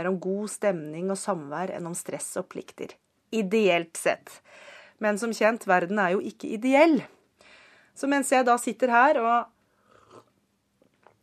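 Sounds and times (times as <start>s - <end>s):
speech: 0.0s - 7.2s, 8.0s - 9.6s
slurping sip from a cup: 9.8s - 10.4s
soft swallow: 9.8s - 10.4s.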